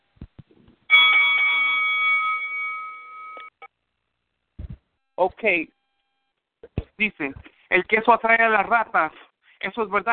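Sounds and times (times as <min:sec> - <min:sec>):
single bright bell strike: 0:00.9 - 0:03.7
speech: 0:05.2 - 0:05.8, 0:07.0 - 0:10.1.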